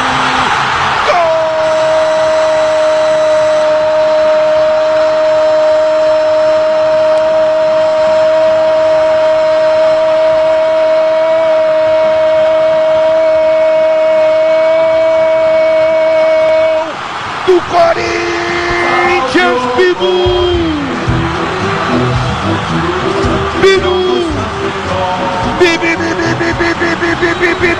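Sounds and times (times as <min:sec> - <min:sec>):
stadium crowd roaring and cheering after a goal: 0:00.0 - 0:27.7
steady droning horn tone: 0:01.2 - 0:16.2, 0:18.0 - 0:27.7
laughter: 0:25.5 - 0:27.7.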